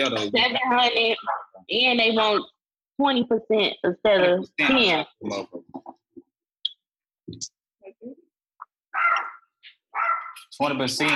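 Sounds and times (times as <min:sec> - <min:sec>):
speech: 0:00.0 - 0:05.7, 0:07.3 - 0:08.2, 0:10.5 - 0:11.1
dog barking: 0:09.0 - 0:09.4, 0:10.0 - 0:10.4.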